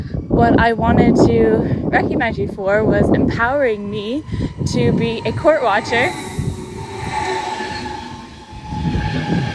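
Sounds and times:
speech: 0:00.0 - 0:06.4
train rumbling past: 0:01.9 - 0:09.5
metallic whine and screech tones: 0:02.2 - 0:09.5.

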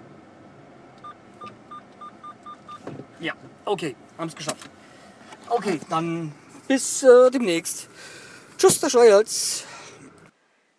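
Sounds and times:
car parking sensor beeps: 0:01.0 - 0:02.9
speech: 0:03.2 - 0:04.8, 0:05.5 - 0:09.7.

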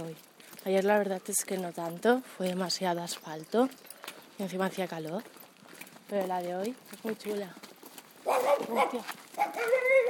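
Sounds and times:
speech: 0:00.0 - 0:05.4, 0:06.1 - 0:10.0
dogs barking, yipping and whining excitedly at passing walkers and their dog: 0:08.2 - 0:10.0.

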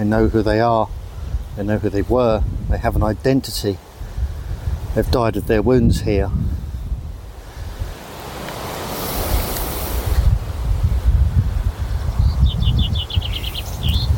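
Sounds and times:
speech: 0:00.0 - 0:01.0, 0:01.6 - 0:03.9, 0:05.0 - 0:06.6
wind gusts buffeting the microphone in an outdoor war cemetery with many trees: 0:00.0 - 0:14.1
bird chirping: 0:12.1 - 0:14.1.

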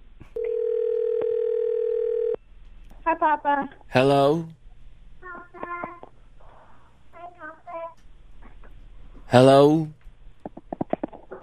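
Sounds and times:
steady telephone tone as a call is placed: 0:00.4 - 0:02.4
speech: 0:03.1 - 0:04.6, 0:09.3 - 0:10.0.

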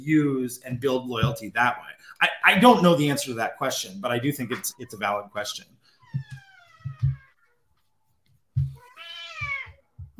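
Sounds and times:
speech: 0:00.0 - 0:06.4
very big female cat meowing loudly: 0:06.0 - 0:07.5, 0:08.8 - 0:09.8.

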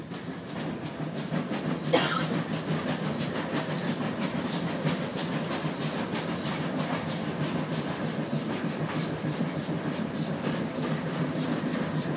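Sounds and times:
steam train rumbling along rails: 0:00.0 - 0:12.1.

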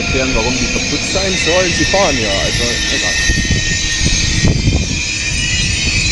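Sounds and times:
ICE high-speed train arriving at station: 0:00.0 - 0:06.0
speech: 0:00.1 - 0:04.2.

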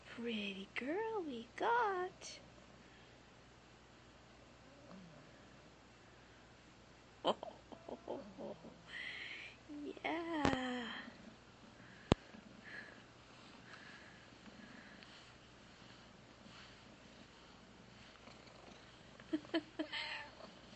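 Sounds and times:
speech: 0:00.2 - 0:02.5, 0:07.2 - 0:07.5
cat purring: 0:04.3 - 0:05.8, 0:07.3 - 0:20.7.

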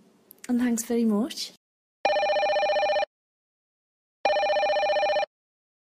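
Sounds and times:
speech: 0:00.5 - 0:01.6
telephone ringing: 0:02.1 - 0:03.1, 0:04.2 - 0:05.3.

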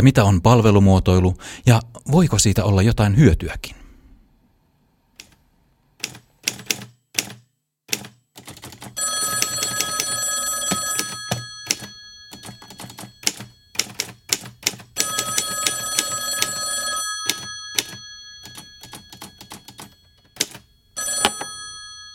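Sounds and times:
speech: 0:00.0 - 0:03.8
sharp uneven mechanical clicks and taps: 0:06.0 - 0:08.9
telephone bell ringing before a cold sales call: 0:09.0 - 0:22.1.

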